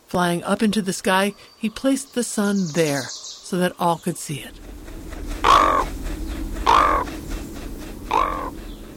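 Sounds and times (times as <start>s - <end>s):
speech: 0.1s - 4.8s
raven calling with harsh hoarse croaks: 4.5s - 8.8s.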